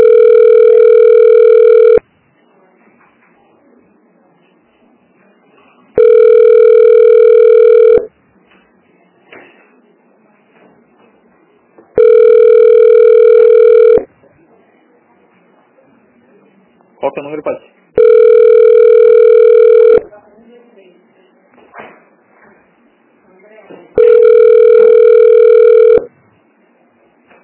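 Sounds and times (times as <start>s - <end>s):
telephone ringing tone during a call transfer: 0.0s - 2.0s, 6.0s - 8.1s, 12.0s - 14.1s, 18.0s - 20.1s, 24.0s - 26.1s
faint noise: 0.0s - 27.4s.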